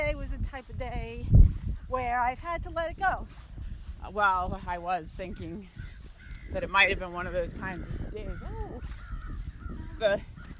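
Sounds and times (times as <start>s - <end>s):
speech: 0.6s - 5.9s, 6.5s - 9.0s, 9.9s - 10.3s
crow cawing: 5.9s - 6.5s, 8.9s - 9.8s.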